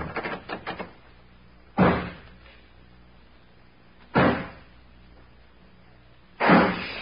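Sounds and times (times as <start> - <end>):
heavy booming bangs of a door being forced: 1.8 - 2.2, 4.1 - 4.6.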